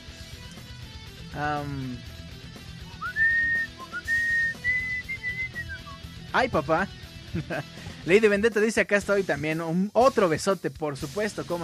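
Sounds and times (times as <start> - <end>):
speech: 1.3 - 2.1, 6.3 - 11.6
person whistling a melody: 2.9 - 6.0
laughter: 7.3 - 7.8.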